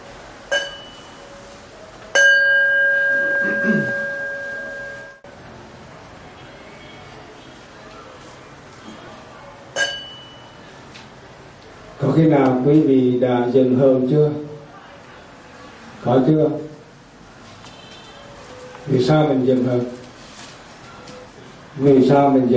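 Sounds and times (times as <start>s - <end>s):
bell struck and ringing: 0.5s - 1.3s, 2.2s - 5.2s, 9.8s - 10.6s
faint low murmur: 3.1s - 22.0s
speech: 12.1s - 14.5s, 16.0s - 16.6s, 18.9s - 20.0s, 21.8s - 22.5s.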